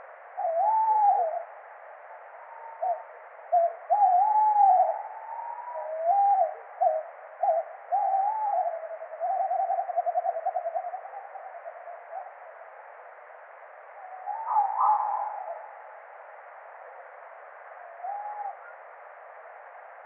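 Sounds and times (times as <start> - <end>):
Strix aluco tawny owl hooting: 0.4 - 1.5, 2.4 - 12.3, 14.0 - 15.9, 17.8 - 18.8.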